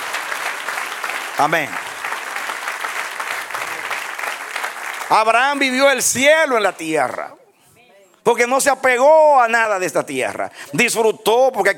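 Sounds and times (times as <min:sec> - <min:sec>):
church congregation applauding: 0:00.0 - 0:07.2
speech: 0:01.4 - 0:01.9, 0:05.1 - 0:07.4, 0:08.2 - 0:11.7.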